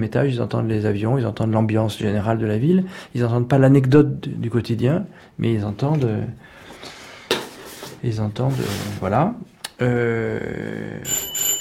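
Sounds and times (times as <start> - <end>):
speech: 0.0 - 7.0, 8.0 - 11.3
electric door bell ringing in a home: 11.1 - 11.6.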